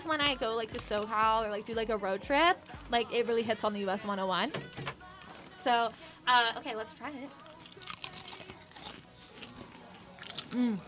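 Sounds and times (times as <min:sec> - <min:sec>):
speech: 0:00.0 - 0:05.0, 0:05.6 - 0:07.9, 0:10.5 - 0:10.8
chewing crackles: 0:07.3 - 0:10.8
crunch of biting into a crispy barbecue chip: 0:07.6 - 0:10.8.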